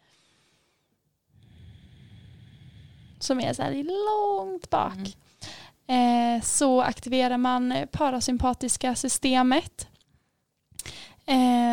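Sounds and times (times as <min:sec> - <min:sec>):
soft breath intake: 0:00.0 - 0:03.2
throaty exhale through the nose during a breathing exercise: 0:01.4 - 0:03.2
speech: 0:03.2 - 0:05.3, 0:05.9 - 0:09.9, 0:11.3 - 0:11.6.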